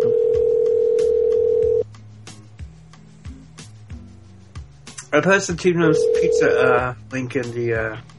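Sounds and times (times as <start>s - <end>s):
outgoing phone call ringback tone: 0.0s - 1.8s, 5.9s - 6.9s
speech: 5.1s - 8.1s.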